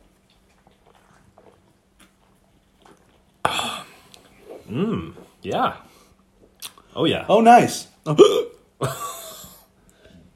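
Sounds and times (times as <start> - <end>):
person hiccuping after a sip of hazy beer: 4.7 - 5.2, 8.1 - 8.6
speech: 4.7 - 5.9, 7.0 - 9.0.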